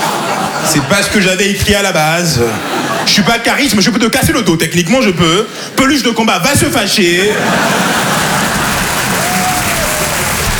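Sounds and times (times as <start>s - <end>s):
laughter: 0.0s - 1.3s, 2.2s - 3.9s, 7.0s - 10.5s
speech: 0.7s - 8.1s
audience applause: 7.2s - 10.5s.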